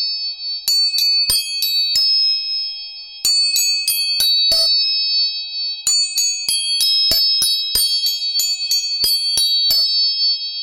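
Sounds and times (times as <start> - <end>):
steady bright ringing of tuning forks: 0.0 - 10.6
tuning forks struck with sharp metallic clicks: 4.2 - 4.8, 6.8 - 10.0.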